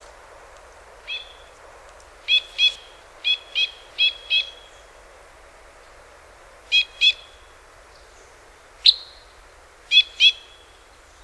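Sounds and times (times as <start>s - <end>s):
Two-barred Crossbill Type N19 excitement calls: 1.0s - 1.6s, 2.2s - 4.9s, 6.7s - 10.8s.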